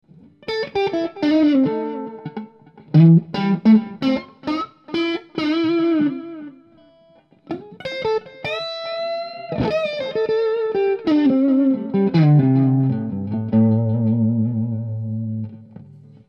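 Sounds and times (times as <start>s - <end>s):
blues guitar solo with echo: 0.1s - 16.2s.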